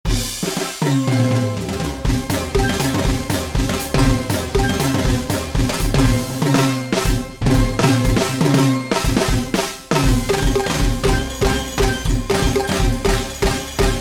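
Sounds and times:
steel drums: 0.1s - 13.9s.

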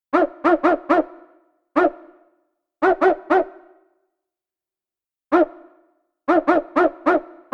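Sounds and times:
dog barking: 0.1s - 2.2s, 2.8s - 3.9s, 5.3s - 7.5s.

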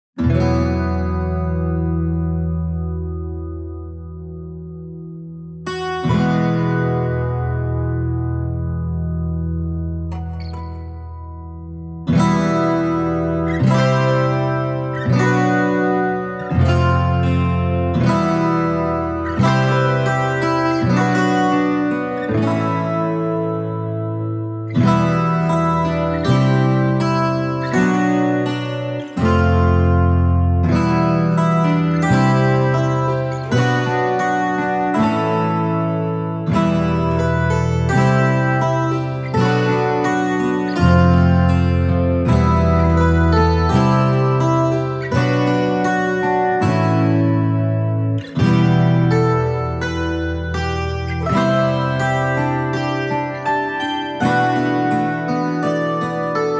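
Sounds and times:
solo guitar: 0.0s - 56.5s.

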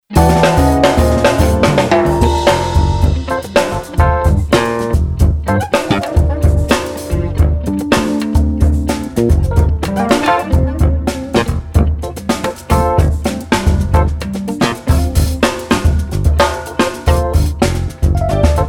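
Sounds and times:
full drum kit playing partido alto: 0.0s - 18.6s.

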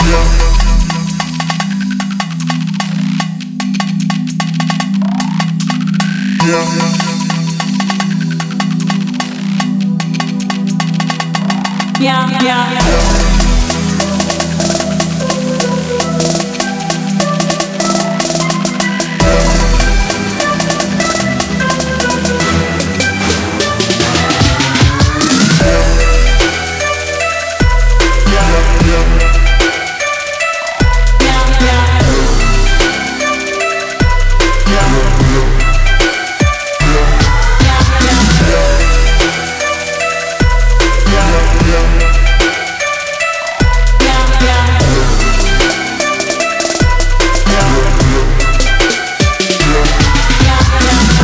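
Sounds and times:
trap drum kit sounds: 0.0s - 51.2s.

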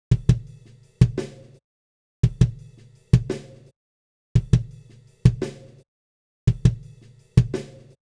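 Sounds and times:
snare drum: 0.1s - 1.6s, 2.2s - 3.7s, 4.4s - 5.8s, 6.5s - 8.0s.

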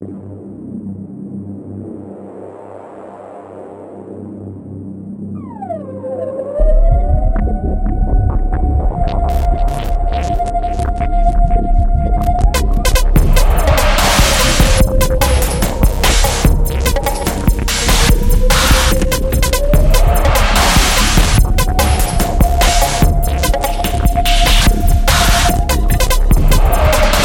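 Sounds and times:
reese bass: 6.6s - 27.2s.

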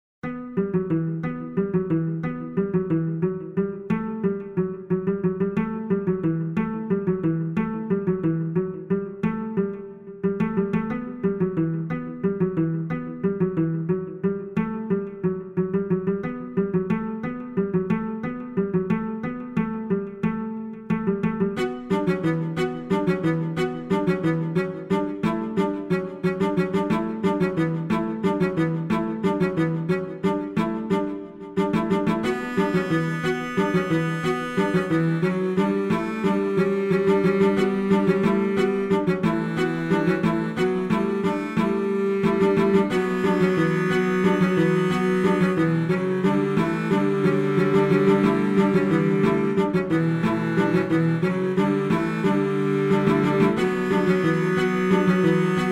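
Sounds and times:
cello and strings dance music: 0.3s - 55.6s.

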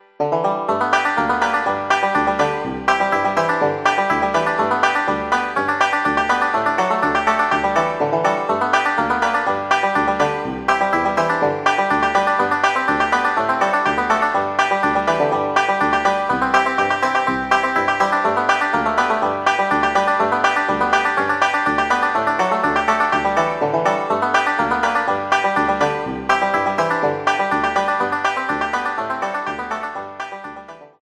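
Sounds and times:
tenor banjo: 0.0s - 31.0s.

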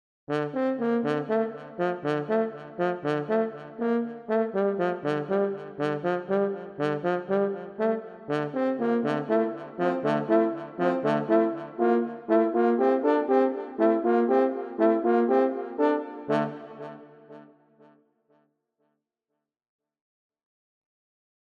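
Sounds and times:
brass French horn: 0.3s - 17.2s.

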